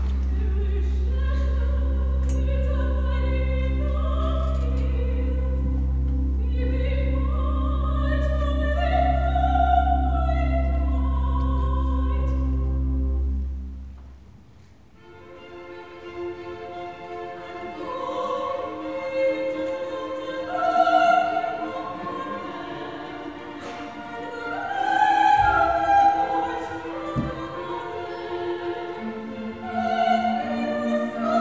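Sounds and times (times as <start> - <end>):
soprano singing recitative in concert: 0.2 - 12.9, 16.4 - 31.3.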